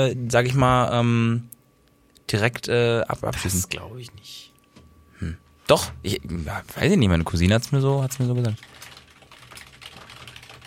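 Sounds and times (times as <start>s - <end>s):
speech: 0.0s - 1.5s, 2.3s - 4.5s, 5.2s - 8.9s
fast typing on a computer keyboard: 7.5s - 10.6s.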